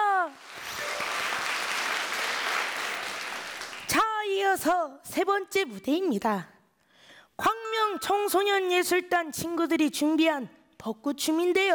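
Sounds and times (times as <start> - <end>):
crowd applauding: 0.0 - 4.0
speech: 4.5 - 6.5, 7.4 - 11.7.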